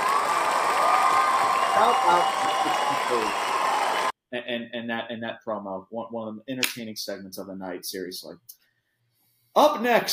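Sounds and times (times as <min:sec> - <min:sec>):
round of applause: 0:00.0 - 0:04.1
crowd voices and cheering: 0:00.0 - 0:04.2
speech: 0:01.8 - 0:03.4, 0:04.3 - 0:08.6, 0:09.6 - 0:10.1.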